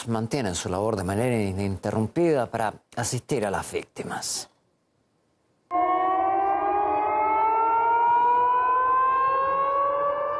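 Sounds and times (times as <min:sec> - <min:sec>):
speech: 0:00.0 - 0:04.5
air-raid siren wailing: 0:05.7 - 0:10.3.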